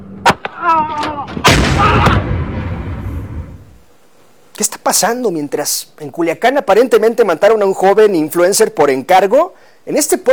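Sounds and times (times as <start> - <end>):
gunshot fired from a pistol during a dispute: 1.3 - 3.6
speech: 4.6 - 10.3.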